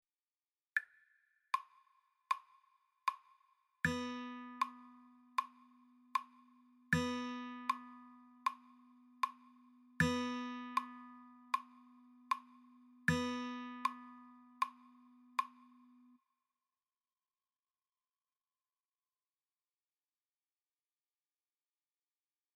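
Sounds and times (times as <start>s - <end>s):
guitar: 3.9s - 5.3s, 6.9s - 16.0s.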